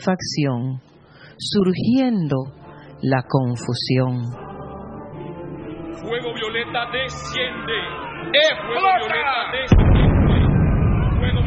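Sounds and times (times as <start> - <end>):
speech: 0.0 - 4.4, 6.0 - 9.9
explosion: 9.7 - 11.4.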